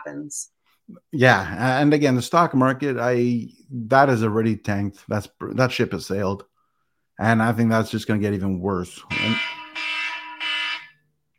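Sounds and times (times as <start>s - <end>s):
speech: 0.0s - 6.5s, 7.2s - 9.6s
electronic alarm buzzing: 9.1s - 11.1s.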